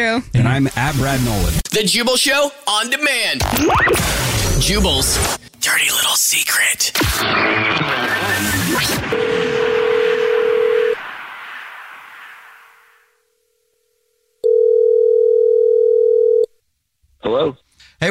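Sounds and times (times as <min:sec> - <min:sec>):
speech: 0:00.0 - 0:09.3, 0:17.3 - 0:18.1
burst of noise: 0:00.4 - 0:01.7, 0:03.4 - 0:05.6, 0:06.9 - 0:13.2
steady telephone tone of a call back: 0:09.2 - 0:11.0, 0:14.4 - 0:16.5.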